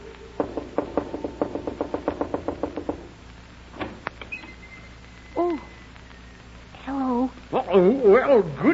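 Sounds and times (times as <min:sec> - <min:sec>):
knocking on a wooden door: 0:00.4 - 0:03.1
speech: 0:07.7 - 0:08.7.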